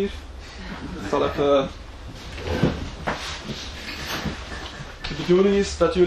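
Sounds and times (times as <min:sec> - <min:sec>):
speech: 0:00.0 - 0:00.3, 0:01.1 - 0:01.8, 0:05.1 - 0:06.0
folding chair being unfolded: 0:02.1 - 0:05.4.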